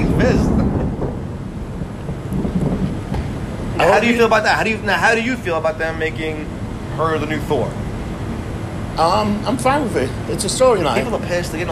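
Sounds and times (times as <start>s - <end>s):
deep steady thunder rumbling: 0.0s - 9.0s
speech: 4.0s - 7.8s, 9.0s - 11.6s.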